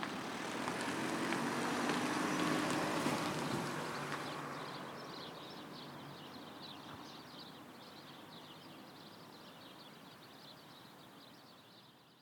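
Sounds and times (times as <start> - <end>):
steady roar of passing cars outside: 0.0 - 8.3
birds chirping in a dense high twittering chorus on a winter morning: 2.0 - 12.2.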